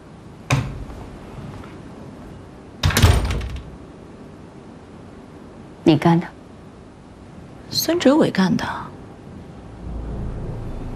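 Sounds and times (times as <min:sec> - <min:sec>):
door shutting with dull thuds: 0:00.5 - 0:00.9, 0:02.8 - 0:03.8
door rattle: 0:02.8 - 0:03.8
speech: 0:05.9 - 0:06.4, 0:07.8 - 0:08.9.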